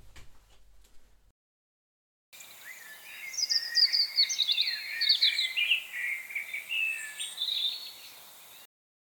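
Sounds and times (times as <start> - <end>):
bird singing outdoors: 2.4 - 8.7.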